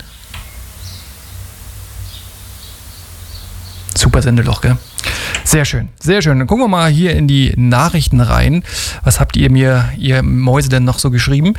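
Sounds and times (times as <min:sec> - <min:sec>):
faint bird chirps outside through an open studio door: 0:00.0 - 0:04.0
steady low rumble of studio noise: 0:00.0 - 0:11.5
speech: 0:04.0 - 0:04.9, 0:05.5 - 0:11.5.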